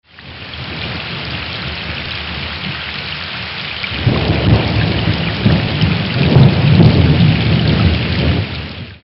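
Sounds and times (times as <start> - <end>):
thunderstorm in the wilderness: 0.2 - 3.1, 3.9 - 9.0.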